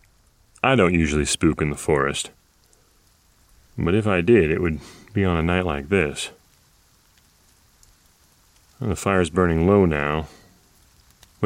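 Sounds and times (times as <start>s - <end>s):
rain falling in a forest at night: 0.0s - 11.4s
speech: 0.6s - 2.4s, 3.8s - 6.4s, 8.8s - 10.4s
brighter droplet ticks: 6.5s - 8.8s, 10.8s - 11.4s.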